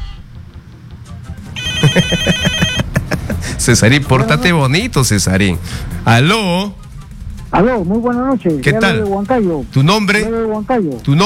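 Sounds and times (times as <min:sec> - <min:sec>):
telephone ringing with an electronic ringtone for an incoming call: 0:01.6 - 0:02.9
laughter: 0:01.6 - 0:03.8
speech: 0:02.0 - 0:02.5, 0:03.6 - 0:06.8, 0:07.5 - 0:11.2.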